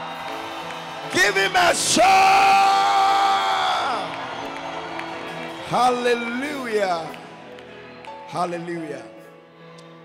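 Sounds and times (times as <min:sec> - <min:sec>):
crowd shouting and cheering: 0:00.0 - 0:10.0
speech: 0:01.1 - 0:02.9, 0:05.7 - 0:07.2, 0:08.3 - 0:09.2.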